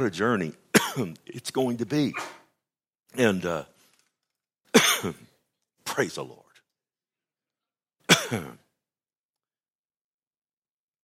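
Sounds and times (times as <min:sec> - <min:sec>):
speech: 0:00.0 - 0:02.4, 0:03.1 - 0:03.7, 0:05.0 - 0:05.2, 0:06.0 - 0:06.4, 0:08.3 - 0:08.6
harsh cough rolling into rough throat clearing during a church service: 0:00.7 - 0:01.2, 0:04.7 - 0:05.4, 0:08.0 - 0:08.8.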